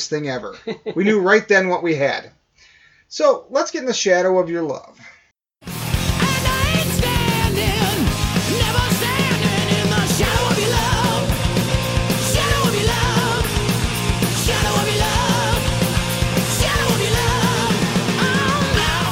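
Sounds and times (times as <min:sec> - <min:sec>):
speech: 0:00.0 - 0:02.4, 0:03.1 - 0:05.2
dense distorted guitars: 0:05.6 - 0:19.1
hard rock song: 0:05.6 - 0:19.1
pounding drums: 0:05.7 - 0:19.1
strained shouting vocal: 0:06.2 - 0:19.1.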